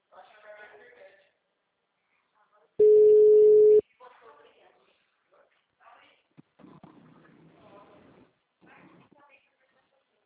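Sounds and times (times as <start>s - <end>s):
telephone line tone while placing a call: 2.8s - 3.8s.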